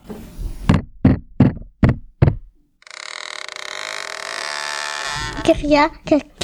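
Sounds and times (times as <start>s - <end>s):
wooden ladder creaking under weight: 1.0s - 6.3s
metallic door handle squealing as it turns slowly: 2.8s - 5.8s
speech: 5.5s - 6.4s.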